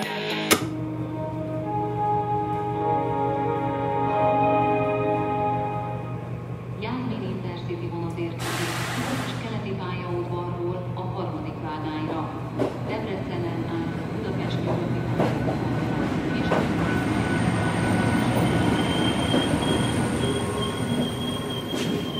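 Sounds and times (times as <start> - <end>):
train rolling along the rails heard from inside the carriage: 0.8 - 22.1
faint metallic squeals of a train: 16.8 - 22.1.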